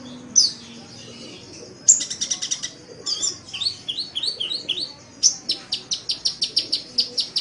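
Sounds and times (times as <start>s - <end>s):
Oriental magpie-robin song: 0.0s - 7.3s.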